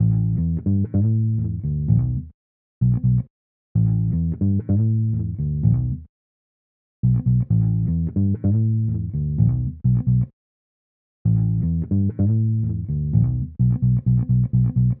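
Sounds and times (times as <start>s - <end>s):
long bass break: 0.0s - 6.1s, 7.0s - 10.3s, 11.3s - 14.9s.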